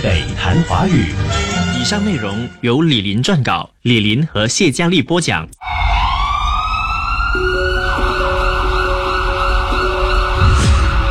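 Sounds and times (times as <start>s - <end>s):
speech: 0.0s - 6.0s
ambulance siren wailing: 5.6s - 11.0s.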